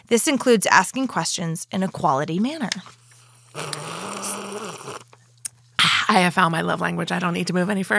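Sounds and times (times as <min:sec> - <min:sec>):
speech: 0:00.1 - 0:03.0, 0:03.6 - 0:05.0, 0:06.1 - 0:07.9
drawn-out sip of water: 0:02.9 - 0:05.6.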